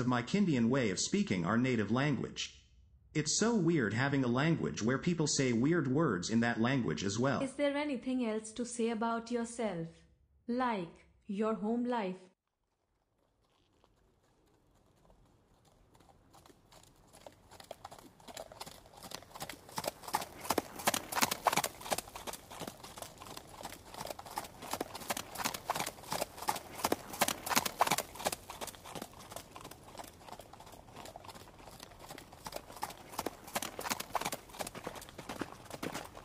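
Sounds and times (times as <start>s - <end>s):
speech: 0.0s - 12.3s
hooves of several horses walking along a dirt road: 12.5s - 36.2s.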